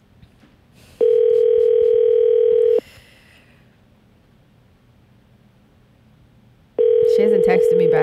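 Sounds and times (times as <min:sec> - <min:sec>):
telephone ringback tone while placing call: 0:01.0 - 0:02.8, 0:06.8 - 0:08.0.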